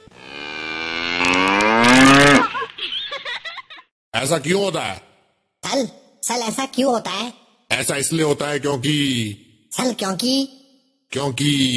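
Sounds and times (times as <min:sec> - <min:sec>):
cow mooing: 0:00.0 - 0:02.4
laughter: 0:02.3 - 0:03.9
speech: 0:04.2 - 0:05.1, 0:05.7 - 0:11.7.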